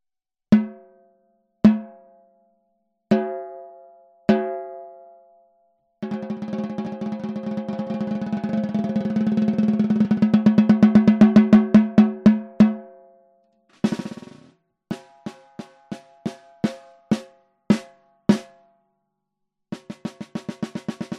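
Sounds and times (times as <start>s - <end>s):
maple snare drum: 6.0s - 12.8s, 13.7s - 18.5s, 19.8s - 21.1s.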